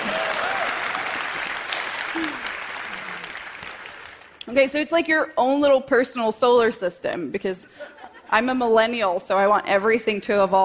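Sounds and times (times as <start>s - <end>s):
faint voices and whoops: 0.0s - 3.4s
crowd applauding: 0.0s - 4.4s
speech: 4.5s - 10.6s.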